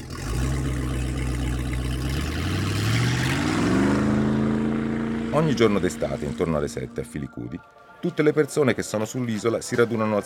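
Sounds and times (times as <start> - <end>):
motorboat engine droning and revving: 0.0 - 7.7
speech: 5.4 - 10.2.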